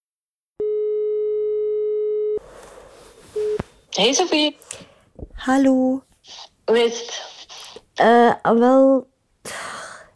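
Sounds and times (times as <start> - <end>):
telephone ringing tone of an outgoing call: 0.6 - 2.4
speech: 4.0 - 4.8, 5.4 - 7.3, 8.0 - 9.1.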